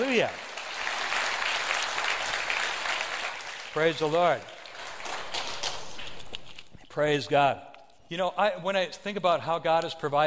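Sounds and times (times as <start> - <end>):
speech: 0.0 - 0.4, 3.7 - 4.5, 7.0 - 10.2
audience clapping hands in praise: 0.0 - 5.8.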